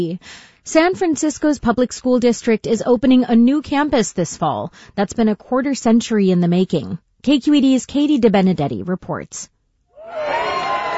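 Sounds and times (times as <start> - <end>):
speech: 0.0 - 10.4
TK and kindergarten children cheering and shouting at a new school opening: 10.0 - 10.9.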